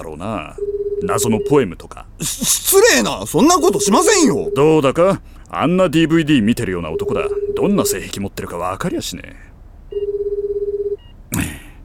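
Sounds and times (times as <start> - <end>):
speech: 0.0 - 9.5
telephone ringing unanswered with a warbling buzzing tone: 0.6 - 1.6, 3.5 - 5.0, 6.9 - 8.2, 9.9 - 11.0.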